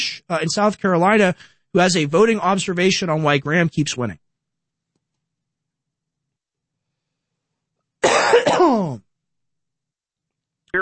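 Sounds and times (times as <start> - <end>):
speech: 0.3 - 4.2
harsh raspy cough of a caller: 8.0 - 9.1.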